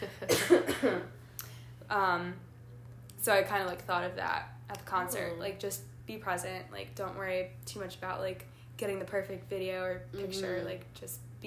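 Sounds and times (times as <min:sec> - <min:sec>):
harsh coughs: 0:00.2 - 0:01.2
speech: 0:02.0 - 0:02.5, 0:03.2 - 0:11.4.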